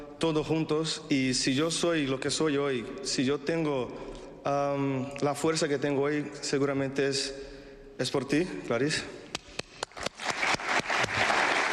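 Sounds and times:
speech: 0:00.2 - 0:09.2
audience applauding at a ceremony: 0:09.8 - 0:11.7.

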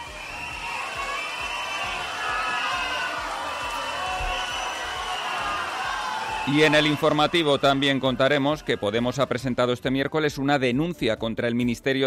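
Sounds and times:
people shouting in a crowd: 0:00.0 - 0:08.9
large crowd booing and jeering the head of government at an infant school: 0:00.0 - 0:09.6
speech: 0:06.5 - 0:12.0.

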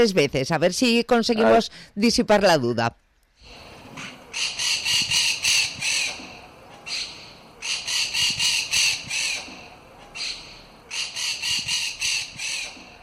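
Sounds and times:
speech: 0:00.0 - 0:03.0, 0:04.4 - 0:04.8
starling chicks begging for food: 0:03.4 - 0:13.0.

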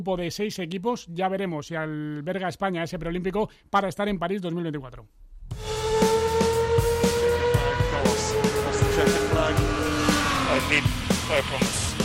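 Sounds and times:
speech: 0:00.0 - 0:05.7, 0:10.6 - 0:11.8
Formula 1 racing car engine screaming: 0:05.6 - 0:12.0.

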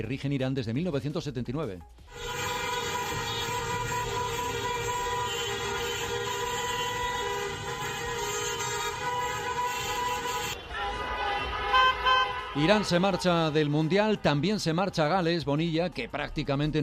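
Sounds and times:
speech: 0:00.0 - 0:02.8, 0:12.6 - 0:16.8
car horns honking in Tehran streets during protests after a World Cup match: 0:02.1 - 0:14.4.

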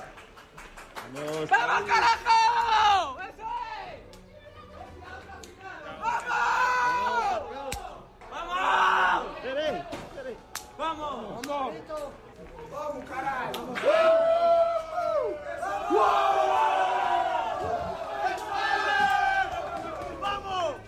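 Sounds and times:
speech: 0:01.1 - 0:02.4
football players shouting and cheering in a locker room after a match: 0:01.5 - 0:04.0, 0:05.7 - 0:09.7, 0:12.9 - 0:20.8
chaotic group chatter of football players: 0:03.5 - 0:20.8.

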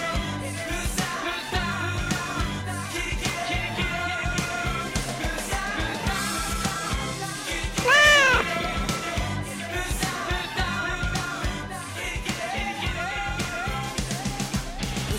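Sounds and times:
music or broadcast noise: 0:00.0 - 0:15.1
cat meowing: 0:07.9 - 0:08.4.

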